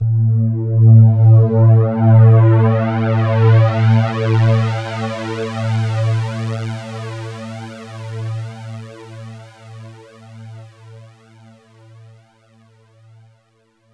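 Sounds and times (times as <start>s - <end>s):
bass fly sound effect: 0.0s - 7.5s.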